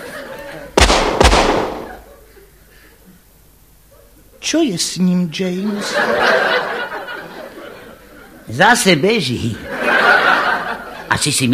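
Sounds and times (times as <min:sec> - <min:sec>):
laughter: 0:00.0 - 0:00.8, 0:01.7 - 0:02.8, 0:05.7 - 0:08.5, 0:09.4 - 0:11.4
gunshots: 0:00.8 - 0:02.1
speech: 0:04.4 - 0:06.8, 0:08.5 - 0:09.8, 0:11.1 - 0:11.5.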